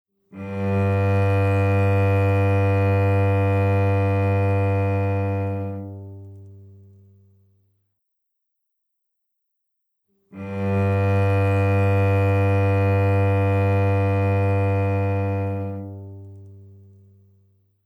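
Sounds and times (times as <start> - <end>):
cello playing tuning note G: 0.3 - 7.0, 10.3 - 17.0.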